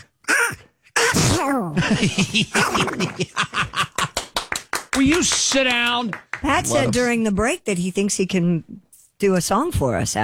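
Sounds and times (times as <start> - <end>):
man imitating a cartoon duck sneezing: 0.0 - 1.8
speech: 1.4 - 3.9, 5.0 - 10.2
laughter: 1.8 - 4.4.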